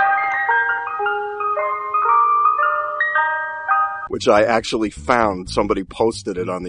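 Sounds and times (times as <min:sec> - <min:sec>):
tinkly music-box style ice cream truck jingle: 0:00.0 - 0:04.1
speech: 0:04.1 - 0:06.6.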